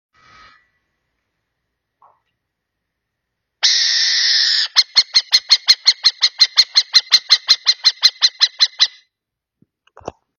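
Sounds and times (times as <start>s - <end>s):
owl song: 3.6s - 9.0s.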